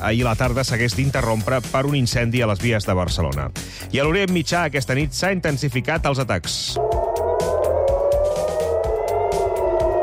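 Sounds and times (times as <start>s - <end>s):
speech: 0.0s - 7.5s
air raid sirens wailing across a city: 6.8s - 10.0s.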